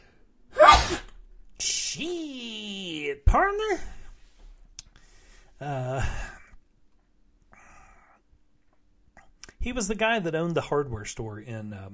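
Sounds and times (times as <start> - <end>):
person sneezing: 0.5 - 1.2
speech: 1.6 - 2.5, 3.1 - 4.0, 5.6 - 6.3, 9.6 - 11.9.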